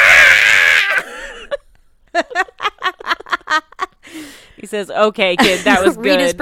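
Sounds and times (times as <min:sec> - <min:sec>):
person screaming shrilly through headphones: 0:00.0 - 0:01.1
speech: 0:04.7 - 0:06.4.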